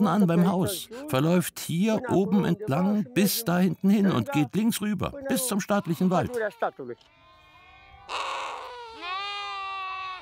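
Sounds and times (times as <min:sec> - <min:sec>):
speech: 0:00.0 - 0:07.2, 0:08.1 - 0:08.3
sheep and lambs bleating in a stable on a family livestock farm in Ineletz: 0:05.3 - 0:10.2.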